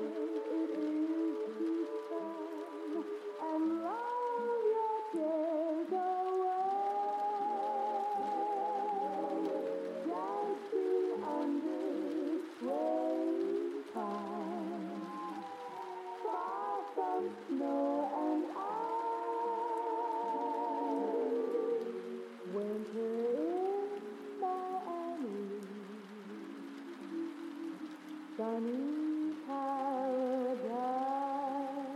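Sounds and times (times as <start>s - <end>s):
old songs playing muffled from another room: 0.0s - 31.9s
soft even hiss: 0.0s - 31.9s.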